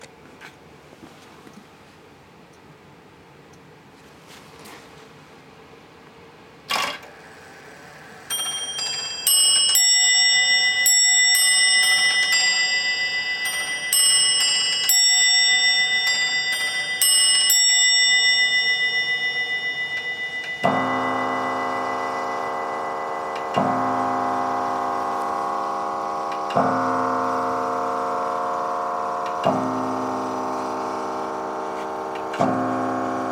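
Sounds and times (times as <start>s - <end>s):
English bracket clock chime: 8.0s - 33.3s.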